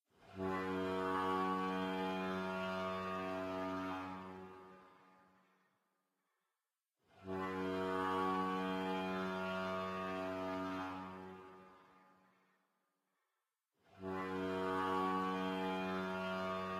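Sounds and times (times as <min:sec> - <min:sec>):
ship horn: 0:00.3 - 0:05.5, 0:07.2 - 0:12.5, 0:13.9 - 0:16.7.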